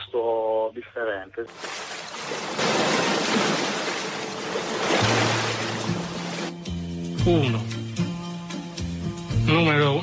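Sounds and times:
speech: 0.1s - 5.2s, 7.2s - 7.8s, 9.5s - 10.0s
small waves washing against a rocky cove: 1.5s - 6.6s.

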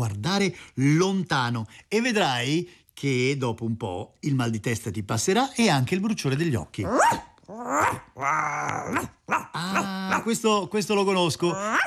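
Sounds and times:
speech: 0.0s - 11.8s
dog growling and barking: 6.8s - 10.4s, 11.6s - 11.8s.

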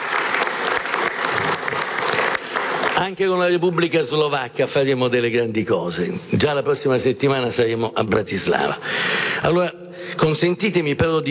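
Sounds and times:
audience applause at a formal event honoring ambassadors: 0.0s - 3.2s
speech: 3.0s - 11.2s.

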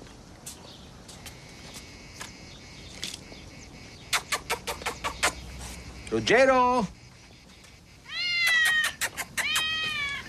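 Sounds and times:
speech: 6.1s - 7.0s
cat meowing: 8.1s - 10.2s.

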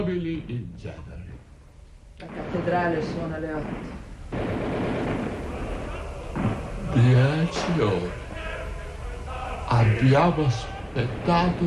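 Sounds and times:
speech: 0.0s - 1.5s, 2.2s - 5.4s, 6.3s - 8.2s, 9.7s - 11.6s
gunshots: 2.2s - 8.2s, 10.8s - 11.6s
heavier blast: 2.2s - 8.3s, 10.1s - 11.6s.

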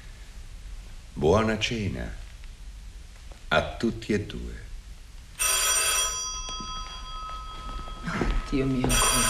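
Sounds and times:
speech: 1.2s - 2.2s, 3.5s - 4.7s, 8.5s - 9.2s
old-style telephone bell ringing: 5.4s - 9.2s.

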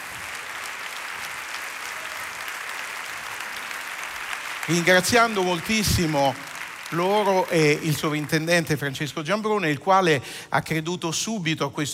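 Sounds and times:
large audience applause in a big opera theatre hall: 0.0s - 9.0s
speech: 4.7s - 11.9s.

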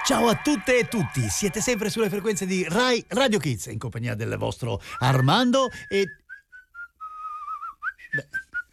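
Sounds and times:
speech: 0.1s - 6.2s
person whistling a lively tune: 4.9s - 8.7s.

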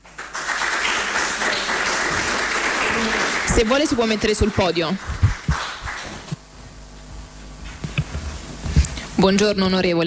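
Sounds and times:
audience applause: 0.0s - 6.4s
speech: 3.6s - 5.2s, 9.2s - 10.0s.

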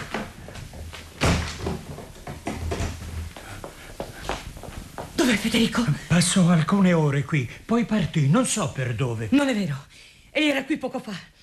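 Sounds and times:
door hurriedly shut with a heavy thud: 1.2s - 3.2s
speech: 5.3s - 11.3s.

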